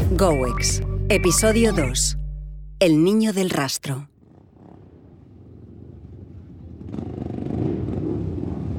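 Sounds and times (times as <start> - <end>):
speech: 0.2 - 2.2, 2.8 - 4.1
motorcycle engine revving: 4.2 - 8.7.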